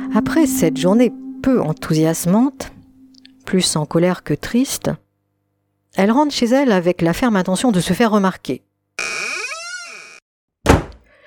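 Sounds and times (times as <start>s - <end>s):
speech: 0.2s - 2.7s, 3.5s - 5.0s, 6.0s - 9.1s
door creaking open on its hinges: 9.0s - 10.9s
door shutting with a heavy thud: 10.6s - 11.1s.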